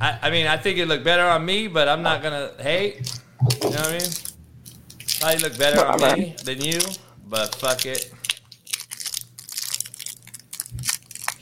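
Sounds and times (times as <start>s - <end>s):
speech: 0.0s - 4.3s, 5.2s - 8.2s
person munching crunchy food: 3.0s - 11.4s.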